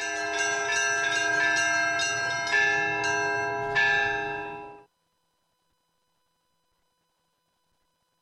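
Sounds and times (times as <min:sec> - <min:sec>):
church bells ringing a melodic peal: 0:00.0 - 0:04.9.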